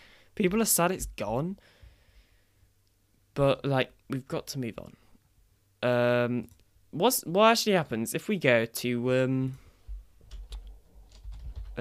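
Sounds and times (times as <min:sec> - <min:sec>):
speech: 0:00.4 - 0:01.8, 0:03.4 - 0:05.0, 0:05.8 - 0:09.6
typing on a computer keyboard to enter a search: 0:10.3 - 0:11.8.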